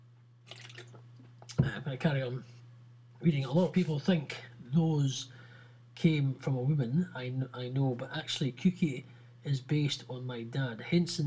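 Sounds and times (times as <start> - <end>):
low electrical hum: 0.0 - 11.2
sipping a drink of water: 0.5 - 1.6
speech: 1.9 - 2.6, 3.2 - 5.4, 6.0 - 11.2.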